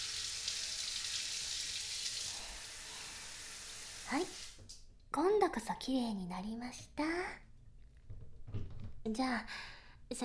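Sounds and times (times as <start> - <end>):
steady hissing spray of shower water: 0.0 - 4.8
speech: 4.1 - 7.5, 9.0 - 10.2.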